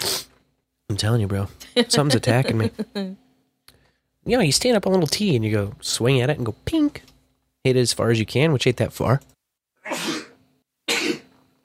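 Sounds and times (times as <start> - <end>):
person sneezing: 0.0 - 0.4, 9.8 - 11.3
speech: 0.9 - 3.2, 4.2 - 9.3
laughter: 1.8 - 3.0.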